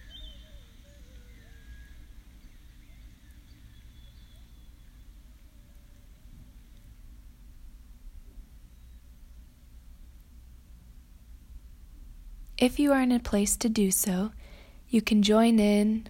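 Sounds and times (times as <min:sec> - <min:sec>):
faint bird chirps: 0:00.0 - 0:06.8, 0:08.6 - 0:09.1
insects humming: 0:00.0 - 0:06.8
speech: 0:12.6 - 0:16.0.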